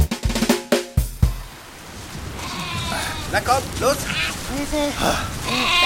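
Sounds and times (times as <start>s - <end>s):
steady hiss of rain: 0.1s - 5.8s
video game sheep bleating: 2.4s - 5.8s
speech: 3.4s - 5.8s.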